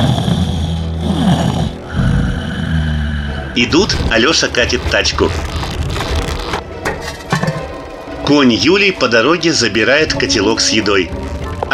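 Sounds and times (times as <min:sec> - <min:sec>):
sleeping serpent-dragon monster snoring loudly: 0:00.0 - 0:06.6
speech: 0:03.6 - 0:05.7, 0:08.3 - 0:11.7.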